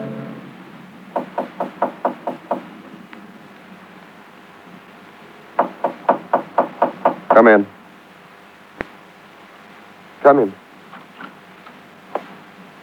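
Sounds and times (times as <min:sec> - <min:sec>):
knocking on a door: 0:01.1 - 0:02.7, 0:05.6 - 0:07.5
speech: 0:10.3 - 0:10.5.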